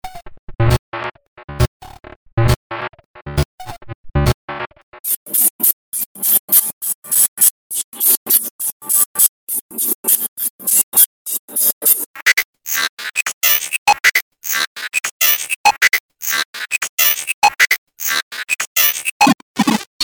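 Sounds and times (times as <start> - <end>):
circuit bent electronic loops: 0.6 - 19.8.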